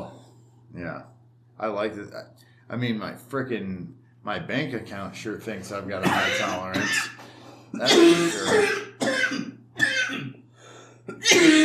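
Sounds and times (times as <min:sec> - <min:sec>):
faint steady hum: 0:00.0 - 0:11.6
speech: 0:00.8 - 0:09.4
harsh coughs: 0:06.0 - 0:10.4, 0:11.1 - 0:11.6.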